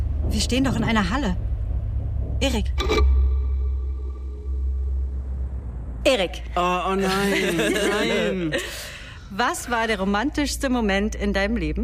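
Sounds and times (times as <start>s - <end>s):
deep thunder rumbling during a thunderstorm: 0.0s - 6.6s
speech: 0.3s - 1.5s, 2.4s - 3.1s, 6.0s - 11.8s
laughter: 7.0s - 9.0s.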